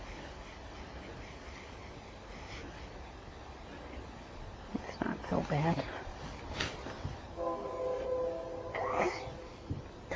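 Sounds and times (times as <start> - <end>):
outdoor noise: 0.0 - 10.1
speech: 5.3 - 6.4
train horn: 7.3 - 9.6.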